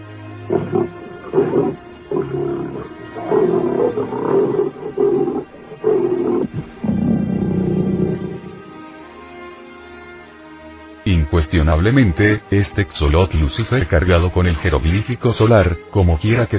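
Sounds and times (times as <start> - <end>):
tiger roaring and snarling: 0.4 - 9.0
speech: 11.5 - 16.5.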